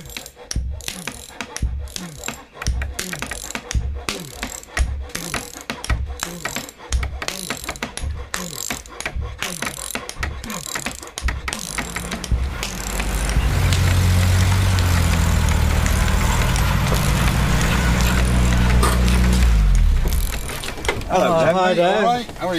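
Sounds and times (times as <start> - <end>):
rattling clicking mechanical noise: 0.0 - 21.5
car engine idling: 11.8 - 21.4.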